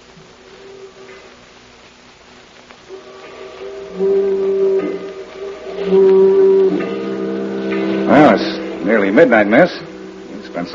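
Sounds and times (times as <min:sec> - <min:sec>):
foghorn blasting along the waterfront: 0:02.9 - 0:10.7
speech: 0:09.1 - 0:09.9, 0:10.6 - 0:10.7.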